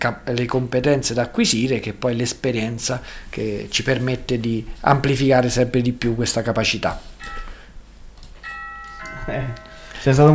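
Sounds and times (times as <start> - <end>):
speech: 0.0 - 7.4, 9.3 - 10.3
bell chiming as a reminder cue: 7.2 - 7.7, 8.4 - 10.3.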